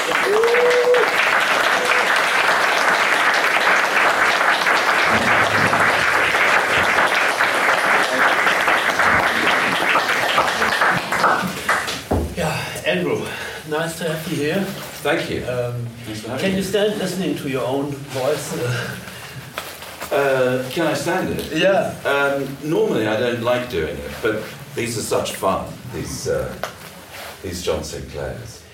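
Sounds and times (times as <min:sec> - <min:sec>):
audience applause welcoming a guest: 0:00.0 - 0:12.1
speech: 0:13.9 - 0:19.1, 0:20.1 - 0:26.7, 0:27.4 - 0:28.6.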